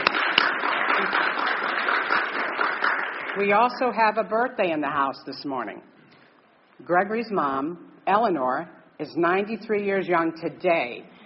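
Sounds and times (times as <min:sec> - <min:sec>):
audience applause honoring mothers at a gathering: 0:00.0 - 0:03.4
speech: 0:03.4 - 0:05.9, 0:06.8 - 0:11.2.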